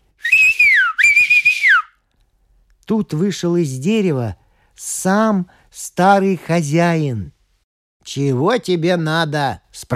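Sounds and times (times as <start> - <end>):
peasant whistling loud clear high notes: 0.2 - 2.0
speech: 2.9 - 7.4, 8.1 - 9.9.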